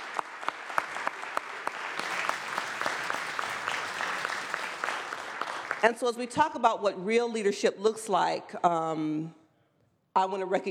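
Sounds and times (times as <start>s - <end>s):
audience clapping: 0.0s - 6.0s
speech: 5.8s - 9.4s, 10.2s - 10.6s.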